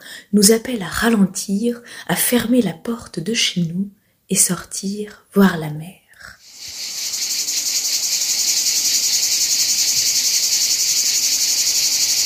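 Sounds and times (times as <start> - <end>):
speech: 0.3 - 6.0
cicada singing in summer heat: 6.4 - 12.2.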